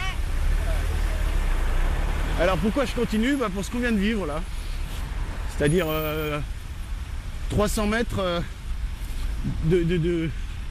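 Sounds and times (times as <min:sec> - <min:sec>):
congested city street traffic of idling and crawling cars: 0:00.0 - 0:10.6
speech: 0:02.4 - 0:04.5, 0:05.6 - 0:06.6, 0:07.5 - 0:08.6, 0:09.4 - 0:10.4.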